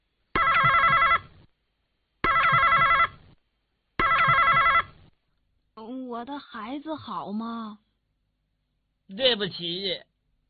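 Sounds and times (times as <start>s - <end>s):
telephone ringing with a loud warbling ring as a call to a veterinary clinic connects: 0.4s - 1.3s, 2.2s - 3.2s, 4.0s - 5.0s
speech: 6.2s - 7.9s, 9.1s - 10.1s.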